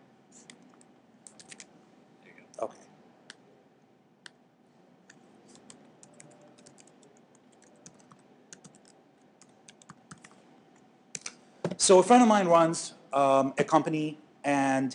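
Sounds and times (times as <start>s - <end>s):
low hum: 0.0s - 14.9s
typing on a computer keyboard: 0.5s - 1.7s, 5.5s - 10.4s
speech: 2.6s - 2.8s, 11.8s - 14.9s.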